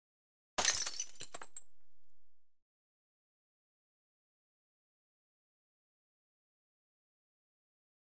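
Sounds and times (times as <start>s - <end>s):
glass wine bottle breaking: 0.6s - 2.4s.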